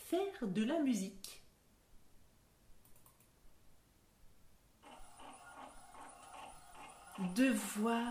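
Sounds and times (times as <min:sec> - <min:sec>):
speech: 0:00.1 - 0:01.3, 0:07.2 - 0:08.0
printer running by itself: 0:04.8 - 0:08.0.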